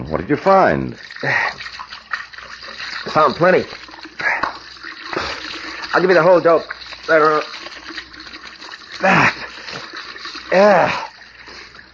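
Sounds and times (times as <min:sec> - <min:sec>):
speech: 0:00.1 - 0:01.8, 0:03.1 - 0:04.3, 0:06.0 - 0:07.6, 0:09.0 - 0:09.3, 0:10.5 - 0:11.0
water running from a cold faucet: 0:00.5 - 0:11.9
person gasping or grunting under a cold faucet: 0:09.0 - 0:09.5, 0:10.5 - 0:11.2.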